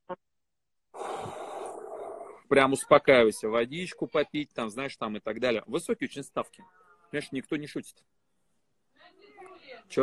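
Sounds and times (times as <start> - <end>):
short puff of breath and long heavy airy exhale: 1.0 - 2.3
speech: 2.5 - 8.2, 9.8 - 10.0.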